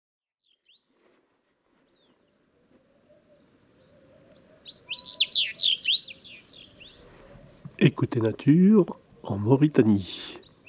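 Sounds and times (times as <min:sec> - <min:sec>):
Sahara bunting singing among stone ruins after sunrise: 0:03.3 - 0:07.6, 0:10.2 - 0:10.6
speech: 0:07.8 - 0:10.4.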